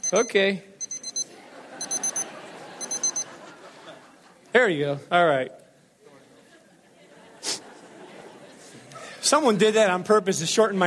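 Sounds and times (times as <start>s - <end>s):
electronic alarm clock beeping in high-pitched tones: 0.0s - 3.4s
speech: 0.1s - 0.7s, 4.6s - 5.6s, 9.3s - 10.8s
laughter: 1.2s - 4.6s, 6.0s - 9.2s.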